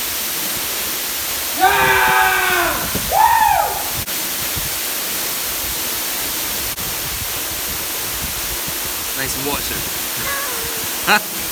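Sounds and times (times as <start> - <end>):
waterfall rushing water: 0.0 - 11.4
speech: 9.2 - 10.0, 11.1 - 11.3
person making drawn-out wordless sounds: 10.1 - 11.4.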